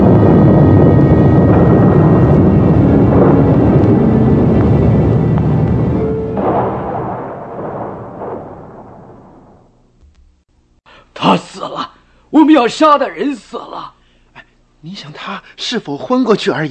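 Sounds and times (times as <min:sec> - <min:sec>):
loud sustained thunder with deep rumbling: 0:00.0 - 0:10.0
speech: 0:12.5 - 0:13.9, 0:14.8 - 0:16.7.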